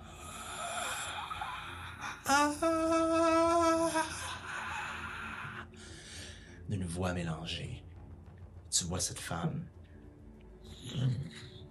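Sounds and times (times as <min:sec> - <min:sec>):
voice imitating a long wailing moan: 0:00.4 - 0:05.7
speech: 0:02.3 - 0:03.0, 0:06.7 - 0:07.9, 0:08.8 - 0:09.8.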